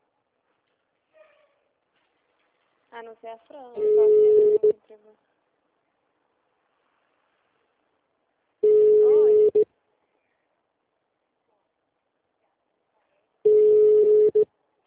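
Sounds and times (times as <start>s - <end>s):
speech: 3.0s - 5.3s
ringback tone of an unanswered telephone call: 3.8s - 4.7s, 8.6s - 9.6s, 13.5s - 14.5s.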